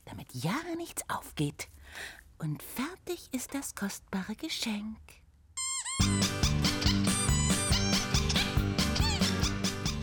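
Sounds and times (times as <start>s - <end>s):
speech: 0.3s - 5.2s
rubber duck squeaking: 5.6s - 10.0s
lively rhythmic music with a steady beat: 6.0s - 10.0s.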